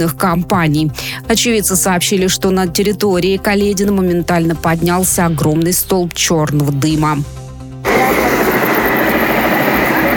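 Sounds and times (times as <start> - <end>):
speech: 0.0 - 7.4
helicopter taking off near a burning tire-recycling warehouse: 7.8 - 10.1.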